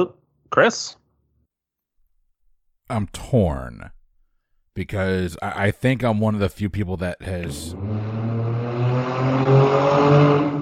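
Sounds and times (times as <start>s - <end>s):
speech: 0.0s - 1.0s, 2.9s - 4.0s, 4.8s - 8.3s
car engine revving loudly: 7.3s - 10.6s.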